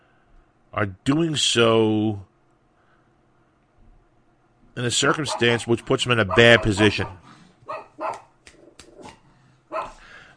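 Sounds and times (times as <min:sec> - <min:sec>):
speech: 0:00.8 - 0:02.3, 0:04.8 - 0:08.2
agitated female dog barking: 0:05.3 - 0:10.1.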